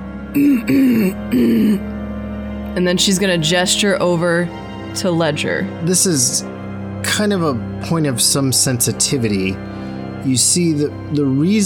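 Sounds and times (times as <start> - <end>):
voice acting out a woman clearing her throat: 0.4 - 1.8
speech: 0.4 - 1.9, 2.8 - 11.6.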